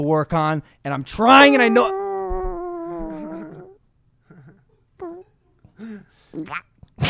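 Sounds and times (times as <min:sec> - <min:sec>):
speech: 0:00.0 - 0:02.0, 0:06.4 - 0:07.0
person imitating a wet fart with their voice: 0:06.4 - 0:07.0.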